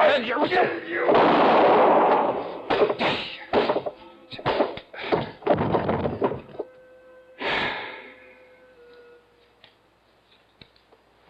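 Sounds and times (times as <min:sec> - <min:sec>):
speech: 0:00.2 - 0:01.5
gunshot: 0:01.1 - 0:03.9
scuffling thuds and knocks: 0:02.7 - 0:06.6
strained breaths: 0:07.4 - 0:09.2.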